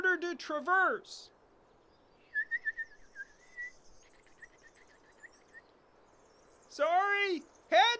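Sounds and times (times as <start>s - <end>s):
speech: 0.3s - 1.4s, 6.8s - 7.9s
person whistling an imitation of a warbler's call: 2.3s - 3.8s.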